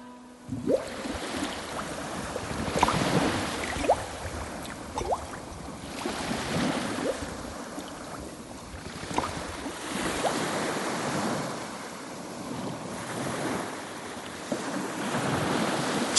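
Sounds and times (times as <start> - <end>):
ocean waves washing onto the shore: 0.4 - 16.1
wind rumble: 0.5 - 10.1.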